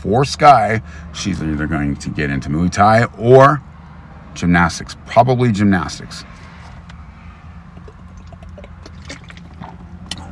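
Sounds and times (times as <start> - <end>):
speech: 0.1 - 3.7, 4.4 - 6.4
water poured for a drink: 7.8 - 9.6.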